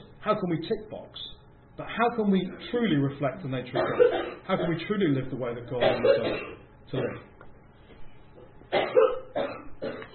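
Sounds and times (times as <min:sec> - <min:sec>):
speech: 0:00.2 - 0:07.3
person coughing harshly in a quiet room: 0:03.8 - 0:04.8, 0:05.8 - 0:07.3, 0:08.7 - 0:10.1.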